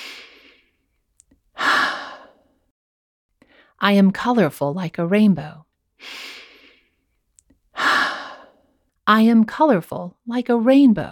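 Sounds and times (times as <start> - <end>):
person taking a deep soft breath in: 0.0 - 0.8, 1.6 - 2.6, 6.0 - 7.0, 7.8 - 8.8
speech: 3.8 - 6.2, 9.1 - 11.1.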